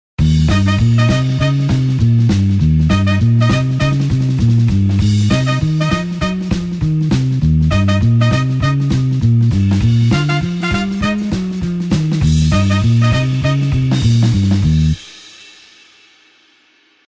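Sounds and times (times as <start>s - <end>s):
blues horns in E flat: 0.2s - 15.0s.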